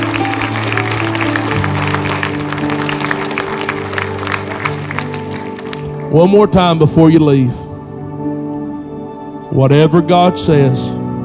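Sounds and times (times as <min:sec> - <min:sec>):
audience clapping hands in praise: 0:00.0 - 0:06.1
speech: 0:06.1 - 0:07.6, 0:09.5 - 0:10.9.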